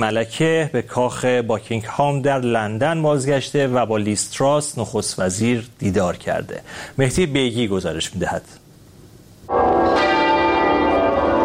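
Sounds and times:
speech: 0:00.0 - 0:08.6
church bells tolling: 0:09.5 - 0:11.4.

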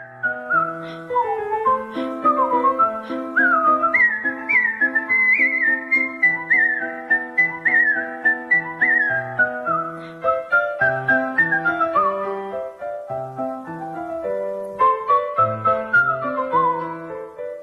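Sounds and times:
person whistling a lively classical piano melody: 0:00.0 - 0:12.4, 0:14.8 - 0:17.2.

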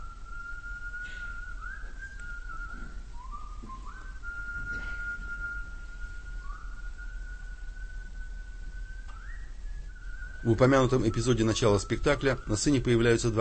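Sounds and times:
low hum: 0:00.0 - 0:13.3
young man whistling a slow melody on a theatre stage: 0:00.0 - 0:13.3
speech: 0:10.4 - 0:13.3.

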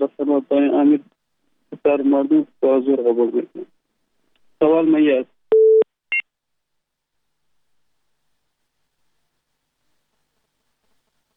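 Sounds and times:
speech: 0:00.4 - 0:01.1, 0:01.8 - 0:03.7, 0:04.6 - 0:05.3
telephone line beep after a call disconnects: 0:05.5 - 0:05.8.

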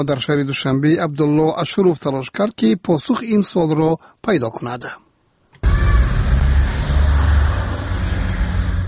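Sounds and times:
speech: 0:00.0 - 0:05.0
official cars passing: 0:05.6 - 0:08.8.

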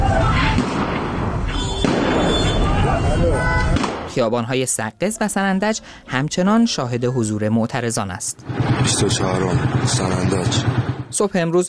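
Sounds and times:
steady noisy outdoor street ambience: 0:00.0 - 0:11.6
sharp gunshots and pops in a street: 0:00.4 - 0:03.0, 0:03.7 - 0:04.3, 0:08.4 - 0:11.3
speech: 0:04.2 - 0:11.6.

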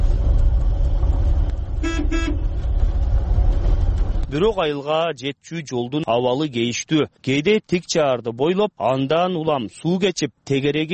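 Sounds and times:
vehicle engine rumble as a car arrives in a mountain village: 0:00.0 - 0:07.7
car horn toots in a mountain village: 0:01.8 - 0:02.5
speech: 0:04.3 - 0:10.9.

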